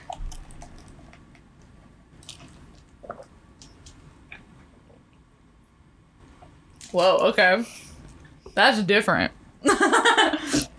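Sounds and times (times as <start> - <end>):
person sipping boba tea: 2.2 - 5.0
speech: 6.9 - 7.8, 8.6 - 10.0.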